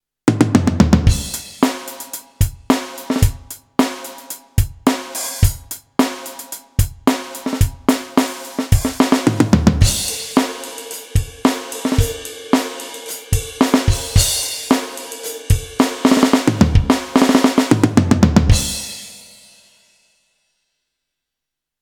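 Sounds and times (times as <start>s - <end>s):
funk drum kit on Alesis Nitro Ultimate: 0.3s - 19.5s.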